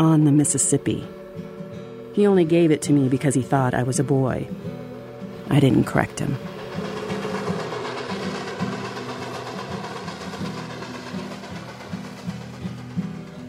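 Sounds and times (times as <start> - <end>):
speech: 0.0 - 1.2, 2.2 - 4.8, 5.5 - 6.5
train rolling on rails: 4.5 - 13.4
train wheels clacking over track joints: 4.8 - 13.4.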